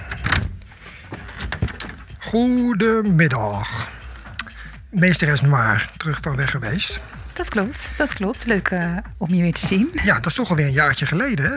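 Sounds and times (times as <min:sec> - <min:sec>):
door swinging open with knocks and creaking scrape: 0:00.0 - 0:02.4
speech: 0:02.3 - 0:03.9, 0:04.9 - 0:11.5.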